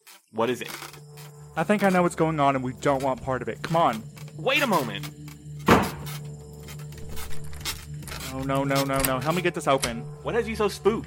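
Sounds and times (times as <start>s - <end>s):
speech: 0.3s - 5.2s, 8.4s - 11.0s
low steady hum: 0.6s - 11.0s
heavy door slamming shut: 5.6s - 6.1s.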